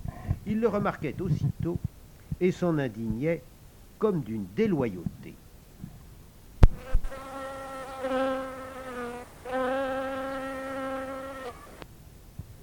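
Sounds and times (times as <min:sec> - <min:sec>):
speech: 0:00.5 - 0:05.4
fly buzzing: 0:06.6 - 0:11.8.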